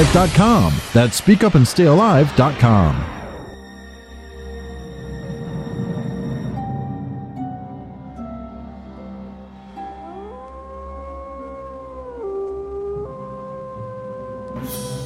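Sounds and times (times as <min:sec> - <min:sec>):
speech: 0:00.0 - 0:03.2
low constant rumbling drone: 0:02.5 - 0:15.0
lone wolf howling: 0:09.8 - 0:14.7.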